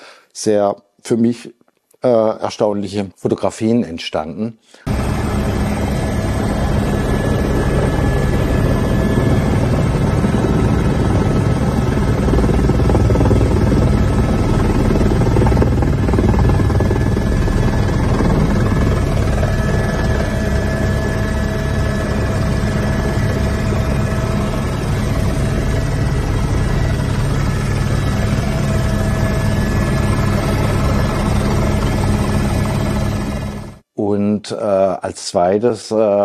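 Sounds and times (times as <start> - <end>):
speech: 0.4 - 5.0, 35.0 - 36.2
helicopter loud low-pitched engine and rotor roar with faint high whine: 4.9 - 33.8.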